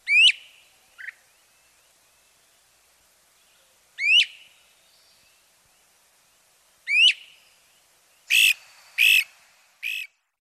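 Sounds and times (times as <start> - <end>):
great crested flycatcher giving rising whistled wheep calls: 0.1 - 1.2, 4.0 - 4.5, 6.9 - 7.4, 8.3 - 10.1.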